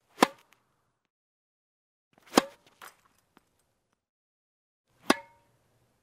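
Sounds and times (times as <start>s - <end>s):
ball being hit in tennis: 0.2s - 0.6s, 2.3s - 2.6s, 5.0s - 5.4s.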